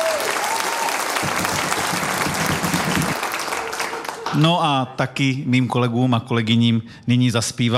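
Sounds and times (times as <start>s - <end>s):
large audience applause at a folklore programme showcase: 0.0s - 4.6s
speech: 4.3s - 7.7s.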